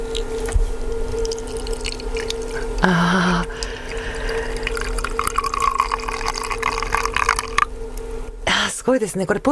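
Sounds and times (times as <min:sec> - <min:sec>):
hot water poured from ceramic cooling vessel into teapot with tea leaves: 0:00.1 - 0:02.9, 0:03.4 - 0:07.7
speech: 0:02.8 - 0:03.5, 0:08.9 - 0:09.4.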